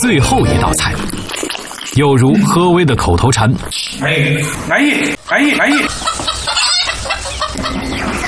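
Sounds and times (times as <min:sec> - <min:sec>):
speech: 0:00.1 - 0:01.2, 0:01.9 - 0:06.1
hen clucking and squawking while fleeing: 0:05.3 - 0:08.2.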